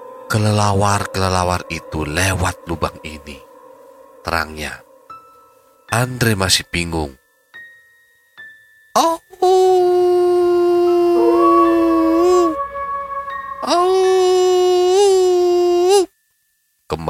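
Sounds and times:
dog howling: 0.0s - 5.3s, 9.8s - 16.1s
speech: 0.3s - 3.5s, 4.2s - 4.8s, 5.9s - 7.2s, 9.0s - 9.6s.

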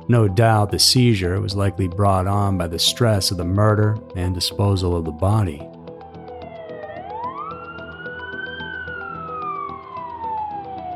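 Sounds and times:
speech: 0.1s - 5.7s
ambulance siren wailing: 5.9s - 10.9s.

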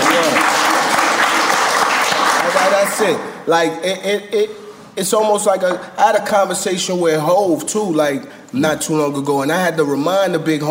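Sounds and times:
crowd clapping: 0.0s - 3.3s
speech: 2.7s - 10.7s.

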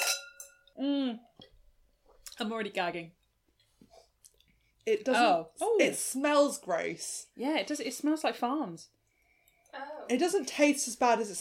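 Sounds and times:
wine glasses clinking in a toast: 0.0s - 0.7s
speech: 2.4s - 3.2s, 4.8s - 9.0s, 9.7s - 11.4s.

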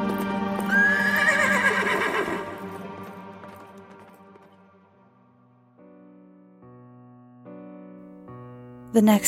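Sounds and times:
black horse with rider galloping past on clattering hooves: 0.0s - 4.7s
black horse neighing: 0.7s - 2.6s
speech: 8.9s - 9.2s.

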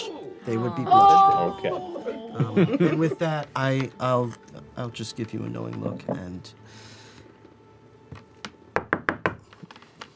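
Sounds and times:
speech: 0.4s - 6.9s
laughter: 0.8s - 3.5s
knocking on a door: 8.8s - 9.4s.

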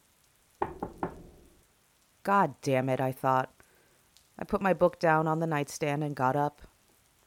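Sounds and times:
sharp knocks on a wooden-sounding door: 0.6s - 1.5s
speech: 2.3s - 3.6s, 4.4s - 6.7s.

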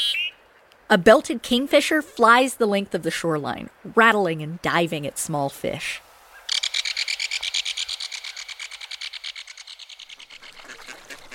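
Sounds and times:
speech: 0.9s - 6.0s
mallard ducks quacking: 6.4s - 11.3s.

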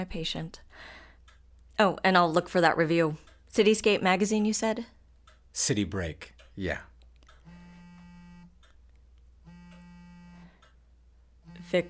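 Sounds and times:
speech: 0.0s - 1.0s, 1.8s - 6.9s
phone buzzing with incoming call: 7.4s - 8.6s, 9.4s - 10.6s, 11.4s - 11.8s.

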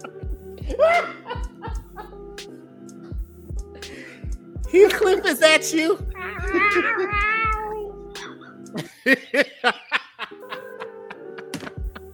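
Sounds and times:
speech: 0.7s - 1.2s, 4.7s - 7.3s, 8.7s - 9.8s
laughter: 0.7s - 2.1s, 6.2s - 12.1s
cat yowling and meowing: 6.2s - 7.9s.

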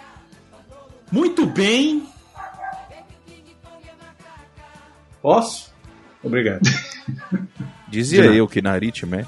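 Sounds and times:
speech: 1.1s - 2.1s, 5.2s - 9.2s
dog barking: 1.4s - 3.1s
laughter: 6.6s - 8.5s.

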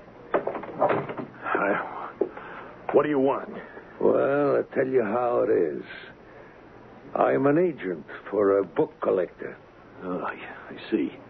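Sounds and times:
door pulled shut with a short thud: 0.3s - 1.4s
speech: 3.0s - 6.1s, 7.2s - 11.2s.

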